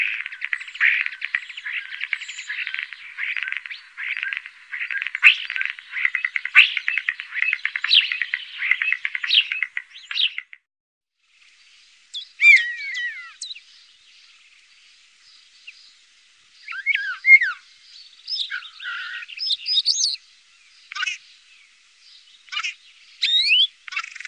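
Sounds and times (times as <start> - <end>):
common starling song of chattering, clicking and rattling notes: 0.2 - 10.5
common starling slurred whistles: 12.2 - 13.6, 16.7 - 17.6, 18.3 - 20.2, 22.5 - 23.7.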